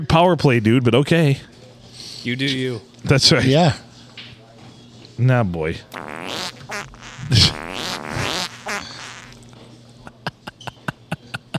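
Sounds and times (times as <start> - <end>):
speech: 0.0 - 1.6, 2.2 - 3.8, 5.2 - 6.4
buzzy sputtering fart sound effects: 6.0 - 9.4
laughter: 7.3 - 9.1, 10.1 - 11.5.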